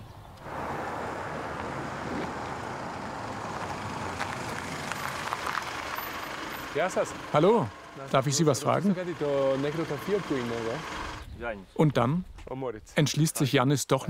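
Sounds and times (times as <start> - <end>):
car approaching with engine and road noise: 0.2 - 11.3
wind buffeting: 0.4 - 6.6
speech: 6.8 - 14.0.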